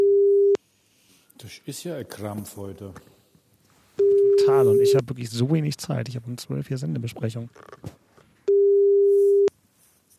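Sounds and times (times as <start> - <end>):
telephone busy signal: 0.0 - 0.6, 4.0 - 5.0, 8.5 - 9.5
speech: 1.4 - 3.2, 4.4 - 8.0.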